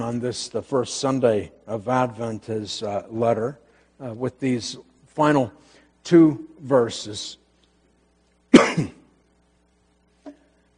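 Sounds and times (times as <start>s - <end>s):
speech: 0.1s - 7.4s, 8.8s - 9.0s
brief soft throat clearing: 8.5s - 9.1s
sharp cough with a rough double-pulse: 8.5s - 9.1s.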